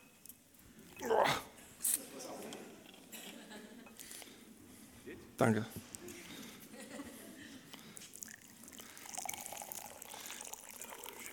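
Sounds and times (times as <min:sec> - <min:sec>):
laughter: 0:02.2 - 0:04.0, 0:06.1 - 0:07.8
speech: 0:05.4 - 0:05.9
hot water poured into a glass: 0:08.1 - 0:11.3.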